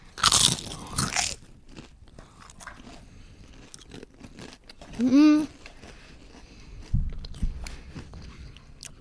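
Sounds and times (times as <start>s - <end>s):
biting into crisp truffle-seasoned potato chips: 0.0s - 8.9s
chewing crackles of potato chips: 0.0s - 8.9s
brief hummed voice: 5.0s - 5.6s
speech: 5.0s - 5.6s.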